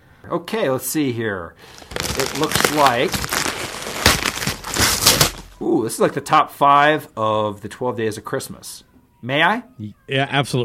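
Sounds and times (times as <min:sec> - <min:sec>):
speech: 0:00.3 - 0:03.4, 0:05.6 - 0:10.6
gift wrapping paper tearing: 0:01.6 - 0:05.6.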